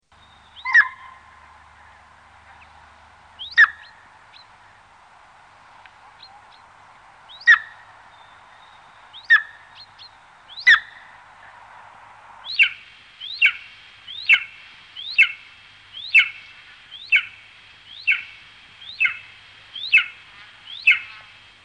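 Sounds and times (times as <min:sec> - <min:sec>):
white-tailed eagle: 0:00.2 - 0:02.8, 0:03.4 - 0:04.8, 0:07.3 - 0:11.2, 0:12.4 - 0:21.3.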